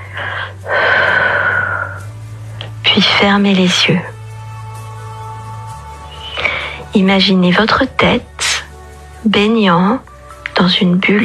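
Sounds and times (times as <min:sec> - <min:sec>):
deep breath drawn in through the nose: 0:00.0 - 0:02.1, 0:06.1 - 0:06.9
speech: 0:03.0 - 0:04.2, 0:07.0 - 0:08.4, 0:09.2 - 0:11.2.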